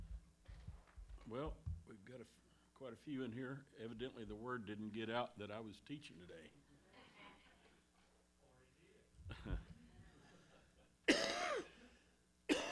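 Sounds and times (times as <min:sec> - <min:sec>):
speech: 0:01.3 - 0:06.6
ill teacher clearing throat: 0:11.1 - 0:11.8, 0:12.5 - 0:12.7
ill teacher coughing: 0:11.1 - 0:11.8, 0:12.5 - 0:12.7.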